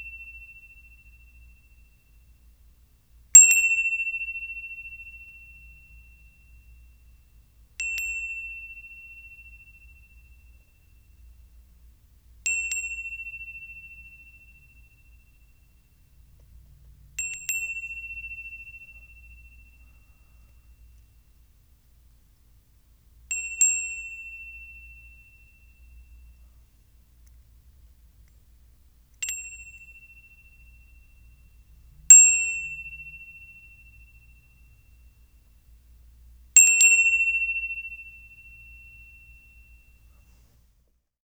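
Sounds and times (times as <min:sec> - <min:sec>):
small Thai bell ringing: 0:03.4 - 0:11.6, 0:12.5 - 0:16.4, 0:17.1 - 0:21.2, 0:23.3 - 0:26.8, 0:29.2 - 0:35.7, 0:36.6 - 0:40.2.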